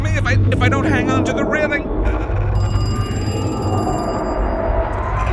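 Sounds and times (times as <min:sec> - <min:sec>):
speech: 0:00.2 - 0:01.6
telephone bell ringing with a rapid trilling rattle: 0:02.5 - 0:05.3.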